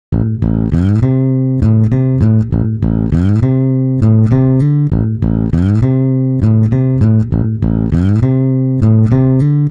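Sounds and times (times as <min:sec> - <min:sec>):
monophonic bass: 0:00.0 - 0:09.6.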